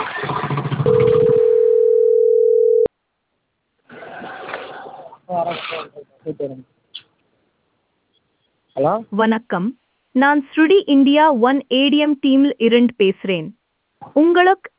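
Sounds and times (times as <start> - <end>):
steady droning ringback tone of an outgoing phone call: 0.8 - 2.9
speech: 6.4 - 6.7, 8.8 - 14.7.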